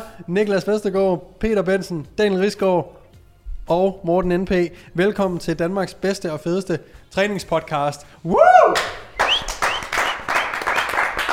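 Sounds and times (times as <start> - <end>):
speech: 0.2 - 3.0, 3.7 - 9.0
excited whoops: 8.3 - 10.0
several people clapping their hands: 8.6 - 11.3.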